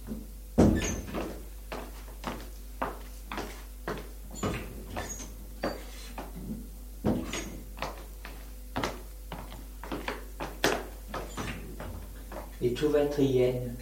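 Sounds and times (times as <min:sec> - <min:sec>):
first-floor doors opening with clunks and rattles: 0:00.0 - 0:01.4, 0:04.3 - 0:08.0, 0:09.9 - 0:12.6
faint steady hum: 0:00.0 - 0:13.7
speech: 0:12.7 - 0:13.7.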